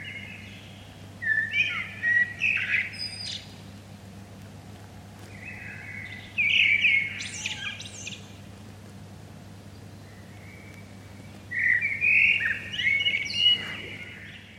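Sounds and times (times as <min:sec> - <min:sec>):
common blackbird Turdus merula song, mellow warble into scratchy twittering: 0:00.0 - 0:03.7, 0:05.2 - 0:08.5, 0:09.5 - 0:14.5
faint hum: 0:00.0 - 0:14.5.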